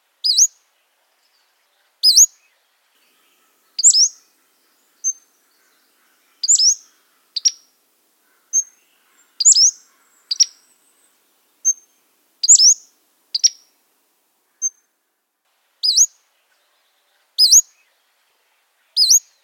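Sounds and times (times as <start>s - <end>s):
Pacific slope Flycatcher calling: 2.0s - 2.4s, 3.0s - 13.8s, 15.8s - 16.2s, 17.4s - 17.7s, 19.0s - 19.3s.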